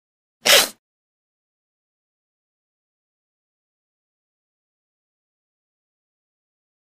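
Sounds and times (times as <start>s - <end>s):
boar snarling and hissing: 0.4s - 0.8s.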